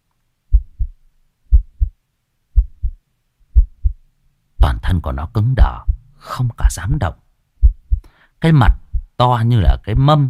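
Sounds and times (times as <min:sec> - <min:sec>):
boy's heart pounding in fear: 0:00.5 - 0:02.0, 0:02.6 - 0:04.0, 0:04.6 - 0:04.9, 0:05.6 - 0:06.0, 0:07.6 - 0:09.2
speech: 0:04.9 - 0:07.2, 0:08.4 - 0:10.2.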